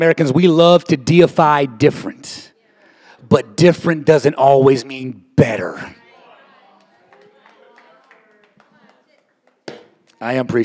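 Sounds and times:
speech: 0:00.0 - 0:02.5, 0:03.2 - 0:06.0, 0:10.2 - 0:10.6
audience clapping: 0:06.6 - 0:10.2.

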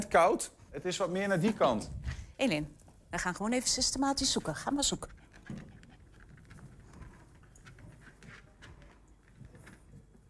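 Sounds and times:
speech: 0:00.1 - 0:05.6
dog sniffing around: 0:04.4 - 0:08.6
dog panting: 0:04.4 - 0:09.4.

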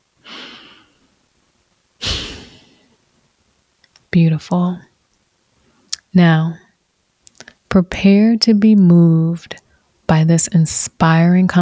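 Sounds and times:
person taking a deep breath: 0:00.2 - 0:01.0, 0:02.0 - 0:02.9
speech: 0:04.1 - 0:04.9, 0:06.1 - 0:06.6, 0:07.7 - 0:11.5.

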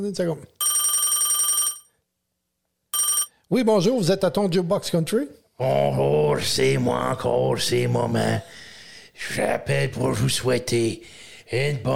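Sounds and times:
speech: 0:00.0 - 0:00.6, 0:03.5 - 0:08.6, 0:09.2 - 0:11.9
telephone bell ringing: 0:00.6 - 0:01.9, 0:03.0 - 0:03.3.

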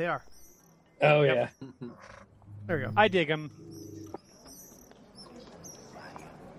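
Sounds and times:
speech: 0:00.0 - 0:00.4, 0:01.0 - 0:03.9
birds chirping in high tweets: 0:00.0 - 0:06.4.

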